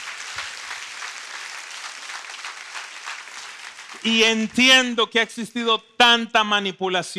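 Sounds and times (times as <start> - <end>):
large crowd applauding: 0.0 - 4.8
speech: 4.0 - 7.1.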